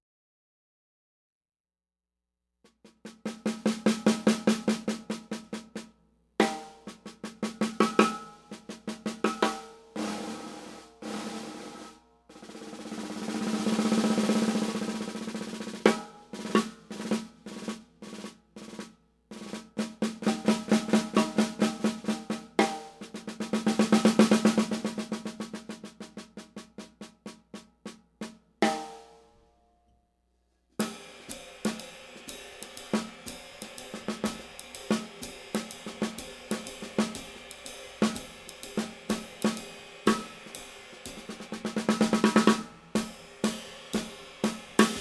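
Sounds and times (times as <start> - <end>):
drums: 2.7 - 29.4, 30.8 - 45.0.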